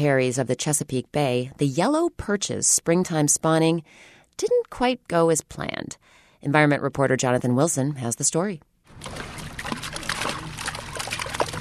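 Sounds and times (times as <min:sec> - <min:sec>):
speech: 0:00.0 - 0:09.3
boat engine humming: 0:08.9 - 0:11.5
fish tossed splashing back into river water: 0:08.9 - 0:11.5.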